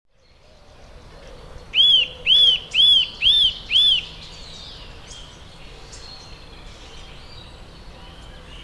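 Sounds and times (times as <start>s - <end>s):
Eurasian nuthatch Sitta europaea calling with loud arched whistles: 1.8s - 4.1s.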